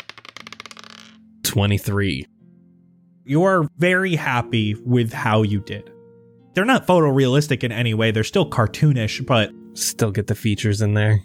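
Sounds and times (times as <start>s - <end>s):
red dice clattering across a hard surface: 0.0s - 1.2s
speech: 1.5s - 2.3s, 3.2s - 6.0s, 6.6s - 11.2s.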